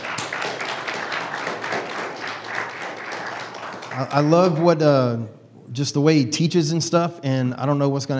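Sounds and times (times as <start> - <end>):
audience hand clapping: 0.0 - 4.9
speech: 4.0 - 8.1.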